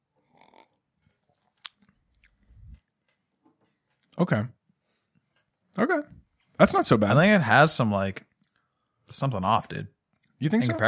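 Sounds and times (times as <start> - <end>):
person sipping beer: 0.2 - 2.9
speech: 4.2 - 4.6, 5.8 - 8.3, 9.1 - 10.8.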